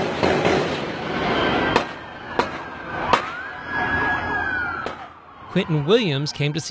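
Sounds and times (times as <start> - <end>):
gunshots during a street march: 0.0 - 3.4
rumbling outdoor din during a street march: 0.0 - 3.8, 4.8 - 5.2
siren wailing: 0.7 - 6.6
speech: 5.6 - 6.6.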